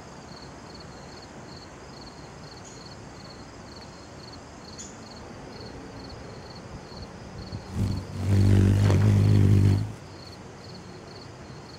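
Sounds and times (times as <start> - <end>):
faint background noise: 0.0 - 11.7
hummingbird wing hum: 7.6 - 10.3.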